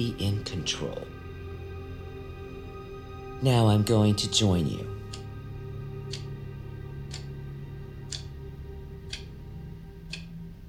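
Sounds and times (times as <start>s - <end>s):
speech: 0.0s - 1.1s, 3.4s - 5.0s
constant low hum: 0.0s - 10.6s
clock ticking: 3.6s - 10.6s.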